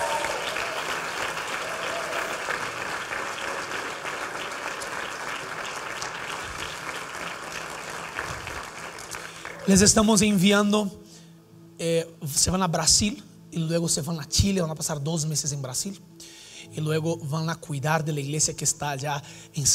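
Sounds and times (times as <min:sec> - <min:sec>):
audience applauding: 0:00.0 - 0:10.0
speech: 0:09.7 - 0:11.0, 0:12.3 - 0:16.2, 0:16.8 - 0:19.7.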